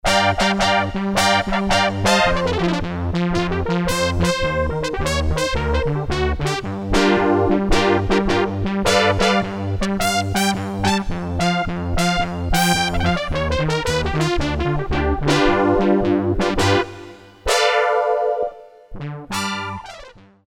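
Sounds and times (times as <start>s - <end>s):
synth brass on Korg DSS-1: 0.0s - 20.3s.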